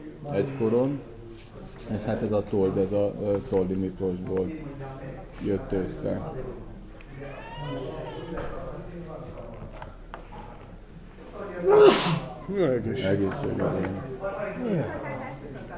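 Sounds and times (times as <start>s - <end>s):
speech: 0.2s - 8.6s, 11.6s - 15.3s
person sneezing: 11.7s - 12.4s.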